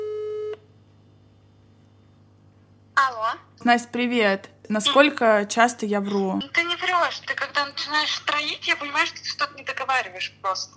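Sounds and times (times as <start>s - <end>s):
telephone ringing tone while calling a friend: 0.0s - 0.6s
speech: 3.0s - 10.7s.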